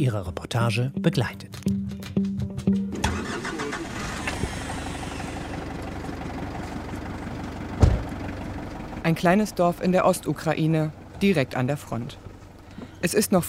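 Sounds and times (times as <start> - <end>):
speech: 0.0 - 1.8, 9.1 - 12.2, 13.0 - 13.4
car engine starting in the morning in a small village in eastern Ukraine: 2.9 - 13.4
thump: 7.8 - 8.1.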